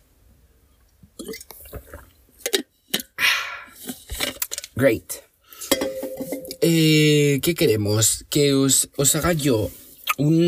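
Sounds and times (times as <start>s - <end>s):
person drinking water with gulps and swallows: 1.0s - 4.0s
speech: 1.3s - 1.5s, 4.8s - 5.3s, 6.6s - 10.4s
breathy exhale: 3.2s - 3.8s.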